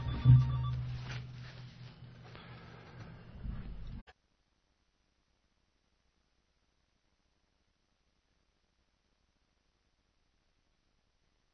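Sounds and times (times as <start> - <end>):
telephone ringing: 0.0 - 1.0
low hum: 0.0 - 4.0.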